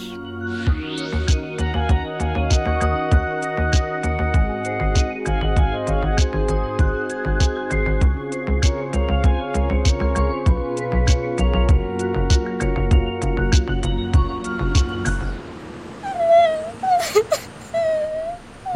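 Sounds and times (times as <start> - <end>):
upbeat music: 0.0 - 15.4
child whimpering and sobbing: 16.0 - 18.7.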